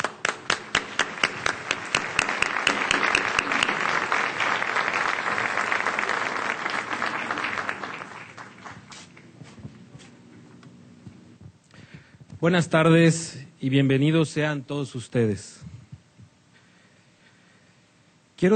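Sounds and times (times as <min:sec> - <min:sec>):
audience applause welcoming a speaker: 0:00.0 - 0:09.1
speech: 0:12.4 - 0:15.6.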